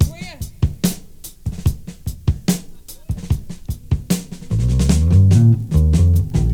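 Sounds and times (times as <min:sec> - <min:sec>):
73 bpm rock drum loop in A key: 0:00.0 - 0:06.5.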